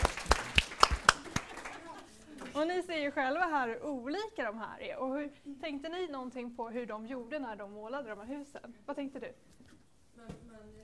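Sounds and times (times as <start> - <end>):
small group clapping in a room: 0.0 - 2.6
speech: 2.6 - 10.8.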